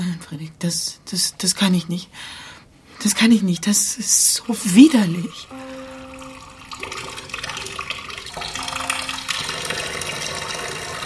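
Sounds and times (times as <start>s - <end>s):
speech: 0.3s - 5.8s
water running into a half-full basin: 3.3s - 11.0s.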